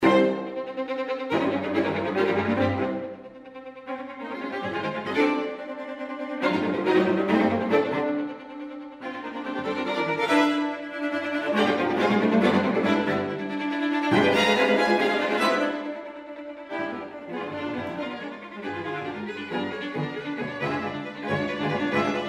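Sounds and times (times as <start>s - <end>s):
string quartet playing a piece in A minor: 0.0s - 22.2s.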